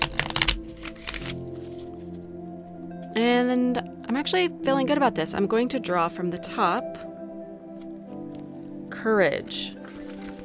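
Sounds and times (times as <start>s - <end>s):
deck of cards shuffling: 0.0s - 3.1s, 9.8s - 10.4s
speech: 3.2s - 7.1s, 9.0s - 9.8s.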